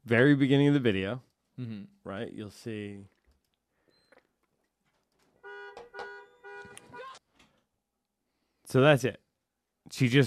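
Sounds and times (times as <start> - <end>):
speech: 0.1 - 3.2, 8.7 - 9.2, 9.9 - 10.2
car alarm blaring: 5.4 - 7.2.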